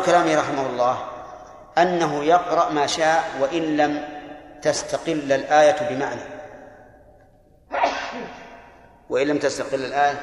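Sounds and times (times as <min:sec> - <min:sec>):
speech: 0:00.0 - 0:01.2, 0:01.8 - 0:06.3, 0:07.7 - 0:08.4, 0:09.1 - 0:10.2
person sneezing: 0:07.7 - 0:08.5.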